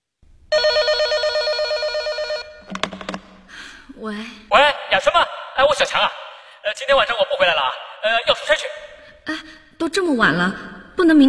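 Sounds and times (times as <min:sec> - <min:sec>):
telephone ringing with a trilling electronic burst: 0:00.5 - 0:02.7
speech: 0:04.0 - 0:06.2, 0:06.8 - 0:11.2.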